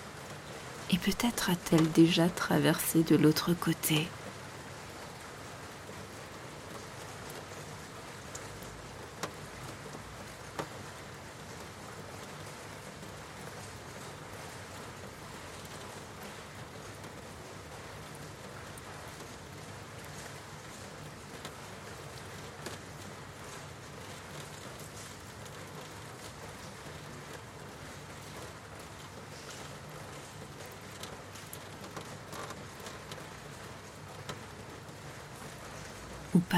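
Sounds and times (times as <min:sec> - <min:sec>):
steady rain falling in an even hiss: 0:00.0 - 0:36.5
speech: 0:00.9 - 0:04.2.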